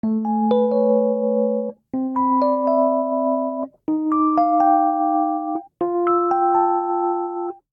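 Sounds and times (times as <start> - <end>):
uptempo rising major chord progression on electric keyboards in A major: 0.0 - 7.7.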